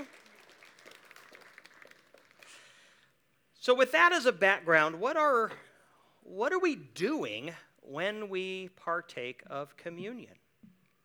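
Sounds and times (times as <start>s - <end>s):
room full of people applauding: 0.0s - 2.7s
speech: 3.6s - 10.4s.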